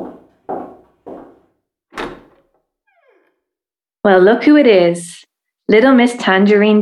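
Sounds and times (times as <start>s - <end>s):
front door creaking as it swings: 0.0s - 3.4s
dull thuds and knocks of front door latch and frame: 2.0s - 2.5s
speech: 4.0s - 6.8s.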